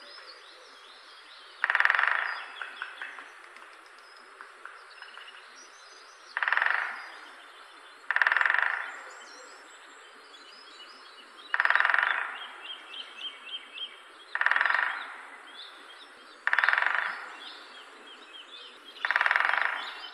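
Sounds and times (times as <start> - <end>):
faint birdsong chirping: 0.0 - 20.1
great spotted woodpecker drumming on wood: 1.6 - 5.1, 6.4 - 7.1, 8.1 - 9.0, 11.5 - 12.4, 14.4 - 15.2, 16.4 - 17.3, 19.0 - 20.1.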